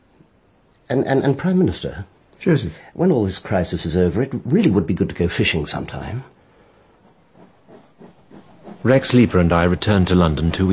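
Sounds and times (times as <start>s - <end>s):
speech: 0.9s - 6.4s, 8.8s - 10.7s
steam train hissing at a station platform in Reading: 7.0s - 10.2s.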